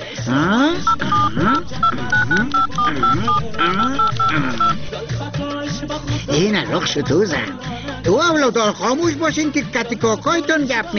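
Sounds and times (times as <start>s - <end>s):
speech: 0.3s - 10.9s
telephone keypad tones while dialing: 0.8s - 4.8s.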